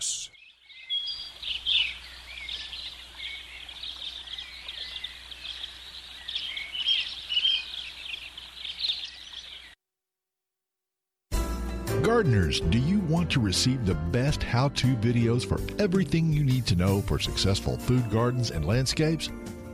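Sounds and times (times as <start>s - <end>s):
birds chirping and singing: 0.0s - 9.8s, 16.2s - 19.2s
speech: 12.1s - 19.6s.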